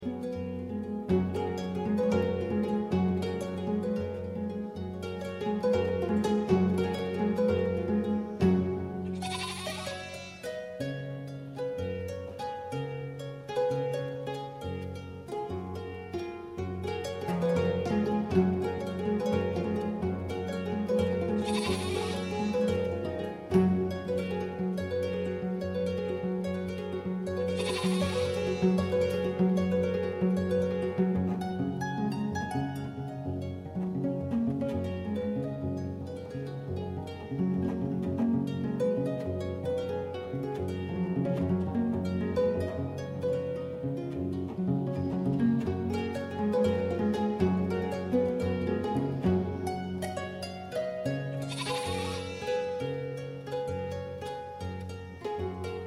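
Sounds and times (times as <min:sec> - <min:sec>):
kora playing in Senegal: 0:00.0 - 0:55.8
lambs bleating in Senegal: 0:09.2 - 0:10.4, 0:21.4 - 0:22.5, 0:27.6 - 0:28.6, 0:51.5 - 0:52.5.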